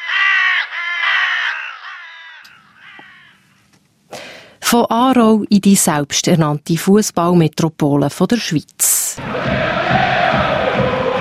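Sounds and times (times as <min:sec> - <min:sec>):
crow cawing: 0:00.0 - 0:03.6
speech: 0:04.7 - 0:11.1.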